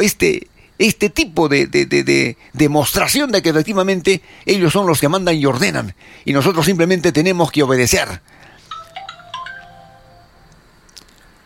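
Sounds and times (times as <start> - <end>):
speech: 0.0 - 8.4
faint room noise: 0.0 - 11.4
electronic phone ringtone for an incoming call: 8.6 - 10.5.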